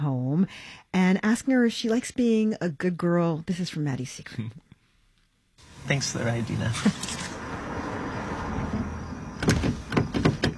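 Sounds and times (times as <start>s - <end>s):
speech: 0.4s - 4.6s, 5.8s - 7.3s
steady car engine hum: 5.6s - 10.5s
stuck car door handle yanked, clunking and rattling: 8.7s - 10.5s.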